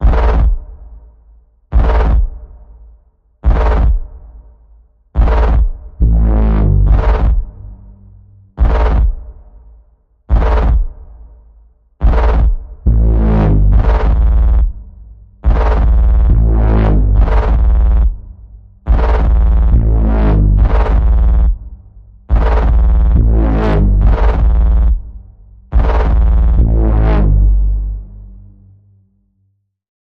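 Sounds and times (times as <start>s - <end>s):
evil warping bass pulse in the key of A: 0.0s - 0.6s, 1.7s - 2.4s, 3.4s - 4.1s, 5.2s - 9.3s, 10.3s - 10.9s, 12.0s - 29.2s.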